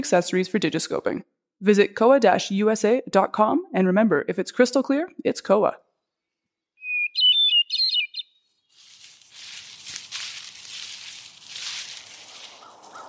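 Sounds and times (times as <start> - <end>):
speech: 0.0 - 5.8
downy woodpecker chattering in a tree: 6.8 - 8.4, 12.6 - 13.0
rustling breezy among trees: 8.6 - 13.0.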